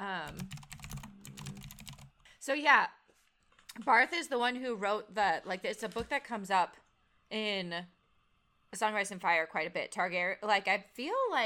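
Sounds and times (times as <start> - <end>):
clicky mechanical keyboard typing: 0.3 - 2.1
speech: 2.4 - 3.0, 3.8 - 8.0, 8.7 - 11.4.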